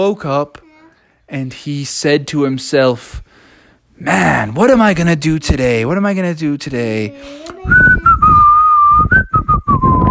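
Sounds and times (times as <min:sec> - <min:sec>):
speech: 0:00.0 - 0:00.6, 0:01.3 - 0:03.3, 0:04.0 - 0:08.0
person whistling a simple tune: 0:07.7 - 0:10.0.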